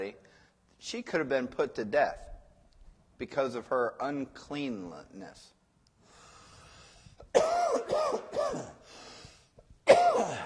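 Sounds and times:
speech: 0.8 - 2.3, 3.2 - 5.6
person coughing harshly: 7.2 - 8.9, 9.8 - 10.4.

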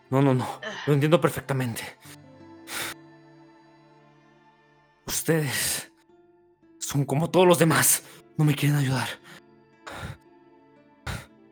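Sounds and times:
speech: 0.1 - 2.2, 5.2 - 5.9, 6.9 - 9.4
man breathing heavily and agitatedly: 2.0 - 3.0, 9.2 - 10.2, 11.1 - 11.3.

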